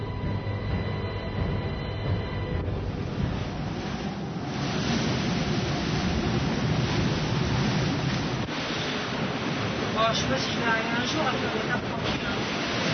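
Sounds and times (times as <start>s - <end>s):
low tonal hum: 0.0s - 8.5s
wind roaring over the ocean: 0.0s - 12.9s
ocean waves crashing: 2.3s - 12.9s
speech: 10.1s - 12.2s.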